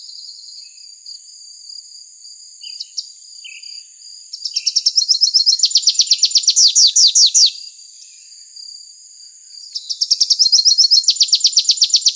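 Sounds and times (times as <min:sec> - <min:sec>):
rufous-capped warbler song in Arizona: 0:04.3 - 0:07.5, 0:09.8 - 0:12.1.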